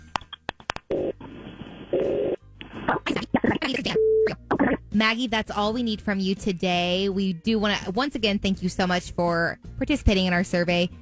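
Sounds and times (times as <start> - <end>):
phone line noise: 0.8 - 4.8
telephone dialing beeps: 3.6 - 4.8
speech: 5.0 - 10.9.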